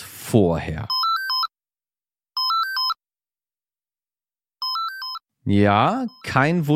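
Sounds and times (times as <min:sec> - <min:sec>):
speech: 0:00.3 - 0:01.0, 0:05.5 - 0:06.7
landline telephone ringing with electronic warbling trills: 0:00.9 - 0:01.5, 0:02.4 - 0:03.0, 0:04.6 - 0:06.4.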